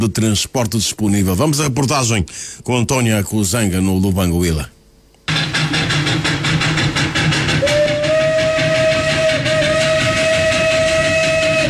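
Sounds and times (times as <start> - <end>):
speech: 0.0 - 4.8
train wheels clattering on rails on a railway branch line: 5.3 - 11.6.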